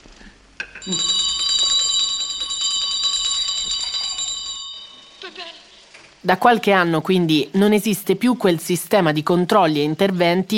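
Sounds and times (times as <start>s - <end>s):
speech: 0.8s - 1.2s, 6.2s - 10.5s
small hand bell shaken by a priest previewing films: 0.8s - 5.2s.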